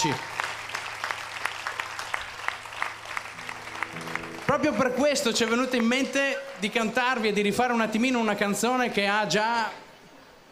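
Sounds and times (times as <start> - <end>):
speech: 0.0 - 0.3, 4.5 - 9.8
crowd applause at a community gathering: 0.0 - 8.0.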